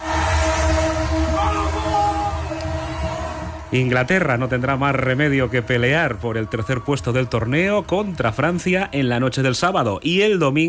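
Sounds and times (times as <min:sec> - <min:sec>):
train horn blaring: 0:00.0 - 0:03.7
crowd noise with indistinct voices: 0:00.0 - 0:10.6
speech: 0:03.7 - 0:10.6.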